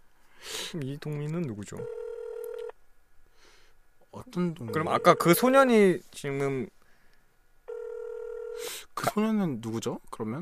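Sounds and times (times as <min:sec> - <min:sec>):
speech: 0:00.7 - 0:02.0, 0:04.1 - 0:06.8, 0:09.1 - 0:10.4
telephone ringback tone: 0:01.8 - 0:02.7, 0:04.7 - 0:05.5, 0:07.7 - 0:08.6.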